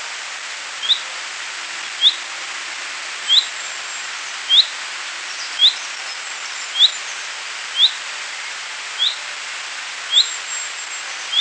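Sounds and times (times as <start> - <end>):
background hiss: 0.0 - 11.3
common chaffinch Fringilla coelebs whistled notes: 0.8 - 1.1, 2.0 - 2.2, 3.3 - 3.5, 4.5 - 4.7, 5.3 - 5.9, 6.7 - 7.1, 7.7 - 8.0, 9.0 - 9.2, 10.1 - 11.3.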